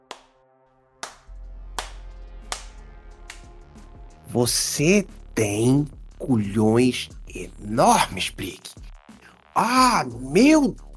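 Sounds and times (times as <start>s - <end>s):
slow deliberate hand claps: 0.0s - 0.4s, 1.0s - 3.6s
speech: 4.4s - 8.9s, 9.6s - 10.8s.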